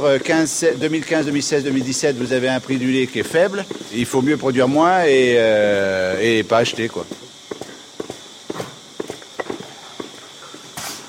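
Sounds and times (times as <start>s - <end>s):
milking parlour machine pulsing clicks during milking: 0.0s - 5.0s
speech: 0.0s - 7.2s
milking parlour hiss and hum: 0.0s - 11.0s.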